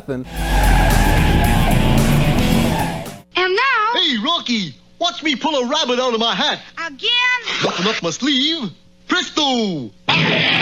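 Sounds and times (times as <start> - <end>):
speech: 0.0 - 0.9, 3.5 - 10.6
car engine roar: 0.3 - 3.2
car tires screeching as a car drives off: 0.3 - 3.2.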